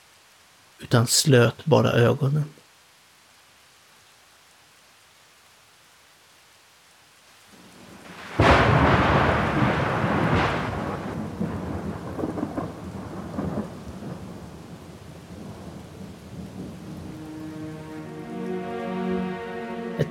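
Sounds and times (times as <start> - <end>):
steady rain: 0.0 - 20.0
speech: 0.8 - 2.6
thunder crack during a rainstorm: 8.0 - 17.4.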